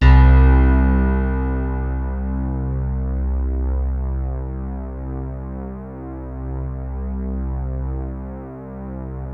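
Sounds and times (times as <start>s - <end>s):
electric piano ballad note: 0.0s - 5.5s.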